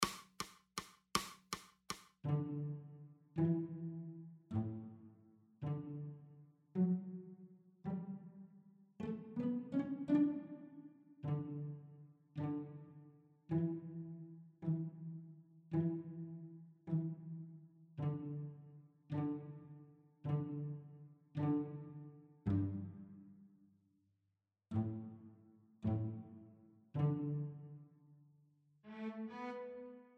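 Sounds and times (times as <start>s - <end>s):
cello: 2.2s - 23.6s, 24.7s - 30.1s.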